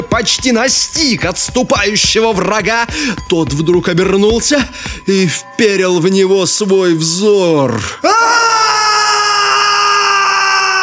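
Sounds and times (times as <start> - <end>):
speech: 0.2 - 8.9
piercing high-pitched scream: 7.8 - 10.8.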